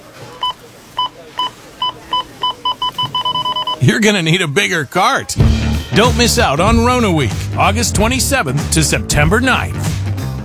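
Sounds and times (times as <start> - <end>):
store checkout scanner beeping: 0.0 - 3.9
steady noise: 0.0 - 10.4
speech: 3.8 - 10.0.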